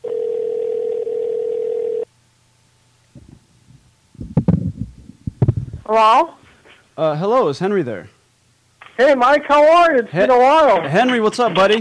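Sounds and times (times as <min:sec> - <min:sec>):
telephone ringing tone: 0:00.0 - 0:02.1
faint rustling and bumping: 0:03.1 - 0:06.8
speech: 0:05.9 - 0:06.4, 0:07.0 - 0:08.2, 0:09.0 - 0:11.7.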